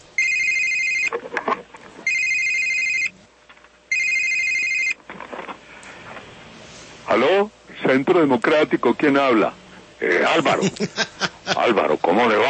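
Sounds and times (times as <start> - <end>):
electronic telephone ringing at a political party headquarters: 0.2 - 1.1, 2.0 - 3.2, 3.9 - 5.0
speech: 7.1 - 12.4
laughter: 10.4 - 12.0.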